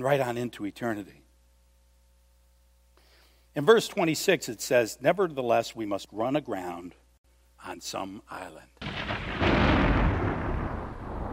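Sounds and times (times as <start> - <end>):
speech: 0.0 - 1.2, 3.6 - 7.0, 7.6 - 9.8
heavy thunder rolling through a storm: 8.8 - 11.3.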